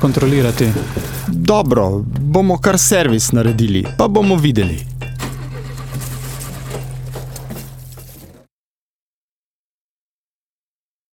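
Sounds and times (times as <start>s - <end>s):
speech: 0.0s - 4.9s
car engine turning over and running: 0.0s - 8.4s.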